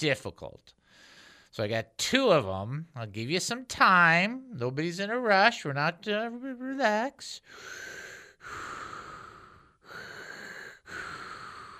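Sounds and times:
speech: 0:00.0 - 0:08.8
person imitating heavy rasping respirator-style breathing: 0:07.4 - 0:11.7.

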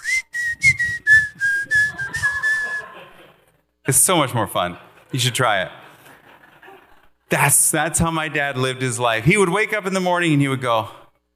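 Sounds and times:
breathy whistle through the teeth: 0:00.0 - 0:03.0
laughter: 0:01.5 - 0:03.6, 0:04.8 - 0:07.3
speech: 0:03.9 - 0:05.8, 0:07.3 - 0:11.0.

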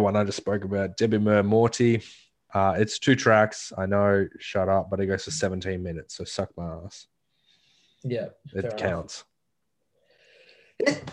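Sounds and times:
speech: 0:00.0 - 0:07.1, 0:08.0 - 0:09.3, 0:10.8 - 0:11.1
quiet inhale: 0:07.3 - 0:08.1, 0:10.0 - 0:10.8.

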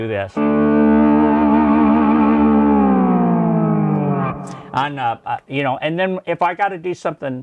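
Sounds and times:
speech: 0:00.0 - 0:01.0, 0:04.4 - 0:07.4
heavily distorted electric guitar chord through a distortion pedal: 0:00.4 - 0:05.0.

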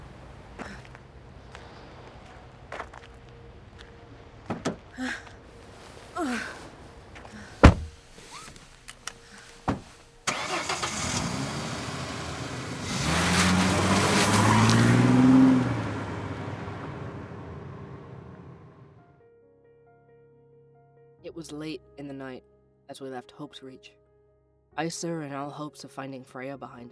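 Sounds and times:
car door shutting: 0:04.4 - 0:05.0, 0:05.8 - 0:11.0
clicks and thumps of someone climbing into a car: 0:04.5 - 0:04.9, 0:07.6 - 0:10.0
car engine cranking, revving and rumbling: 0:07.2 - 0:19.0
speech: 0:23.0 - 0:24.1, 0:24.8 - 0:26.9.

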